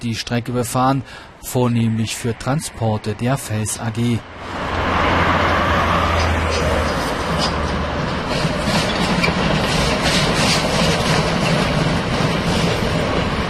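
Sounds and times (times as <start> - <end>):
speech: 0.0 - 4.7
dense rumble of locomotive wheels and machinery: 4.5 - 13.4
class 95 steam locomotive chugging past: 7.2 - 13.4.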